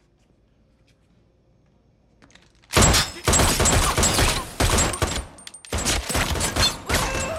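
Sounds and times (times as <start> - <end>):
gunshots fired at a person wearing a bulletproof suit: 2.8 - 7.3.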